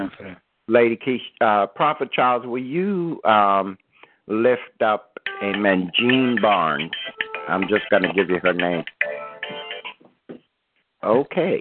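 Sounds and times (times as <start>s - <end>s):
speech: 0.0s - 9.0s, 11.0s - 11.5s
phone ringtone electronic melody: 5.3s - 10.0s.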